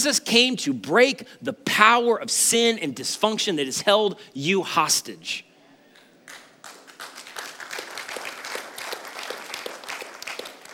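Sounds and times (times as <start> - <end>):
speech: 0.0 - 5.5
crowd giving slow subdued applause: 6.0 - 10.7.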